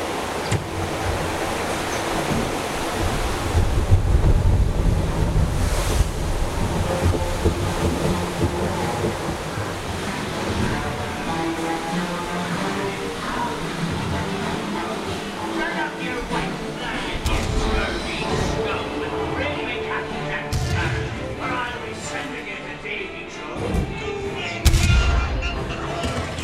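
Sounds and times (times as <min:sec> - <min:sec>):
busy rumbling background: 0:00.0 - 0:26.4
waterfall rushing water: 0:00.0 - 0:26.4
indistinct voices: 0:10.5 - 0:26.4
cannon fire: 0:24.7 - 0:25.4.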